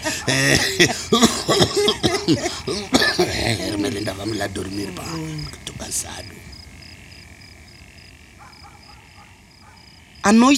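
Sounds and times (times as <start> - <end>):
laughter: 0.0 - 5.7
bright warbling calls: 0.0 - 10.5
frogs croaking in a nighttime chorus: 0.0 - 10.5
high insect-like trill: 0.0 - 10.5
speech: 0.2 - 2.9, 3.9 - 6.6, 10.3 - 10.5.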